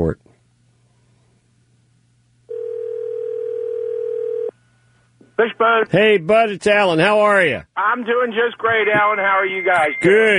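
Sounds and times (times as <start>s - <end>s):
speech: 0.0s - 0.2s, 5.4s - 10.3s
faint low hum: 0.0s - 10.3s
telephone ringing tone of a call: 2.5s - 4.5s.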